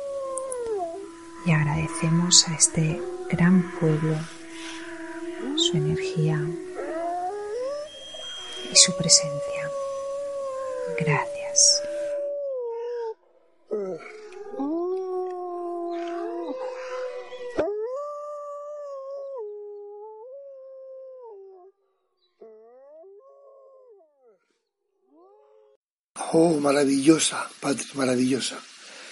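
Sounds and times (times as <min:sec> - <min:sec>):
chorus of wolves howling: 0:00.0 - 0:21.7
speech: 0:01.4 - 0:04.8, 0:05.4 - 0:06.7, 0:08.7 - 0:09.8, 0:10.9 - 0:11.8, 0:26.4 - 0:28.7.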